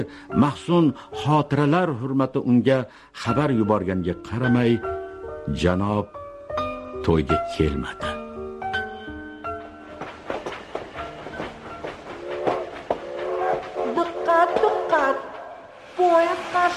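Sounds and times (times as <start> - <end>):
speech: 0.0 - 4.9, 5.5 - 6.2, 7.0 - 8.1
train rattling on rails arriving at a station platform: 8.8 - 16.7.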